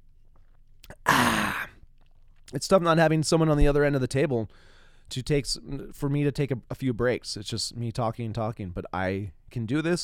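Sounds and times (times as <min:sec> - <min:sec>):
faint lip clicks: 0:00.4 - 0:01.1
slurp sipping a hot drink: 0:00.8 - 0:02.5
speech: 0:02.5 - 0:10.0.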